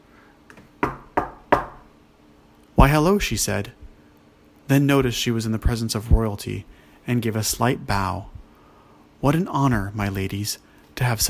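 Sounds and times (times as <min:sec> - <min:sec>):
knocking on the wooden door of a botanist's cottage in a village: 0:00.8 - 0:01.9
speech: 0:02.8 - 0:03.8, 0:04.7 - 0:08.3, 0:09.2 - 0:11.2.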